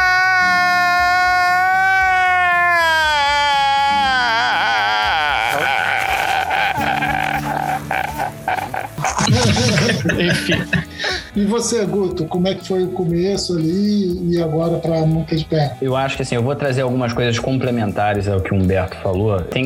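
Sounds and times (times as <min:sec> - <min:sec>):
laughter: 0:00.0 - 0:11.3
person performing exaggerated crying and sobbing: 0:00.0 - 0:11.3
speech: 0:10.0 - 0:10.8, 0:11.4 - 0:19.6.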